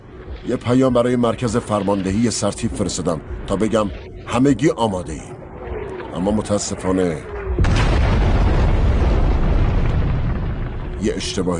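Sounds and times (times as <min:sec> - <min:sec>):
speech: 0:00.4 - 0:05.4, 0:06.1 - 0:07.8, 0:11.0 - 0:11.5
mine blast near German trenches in no-man's land: 0:07.3 - 0:11.5.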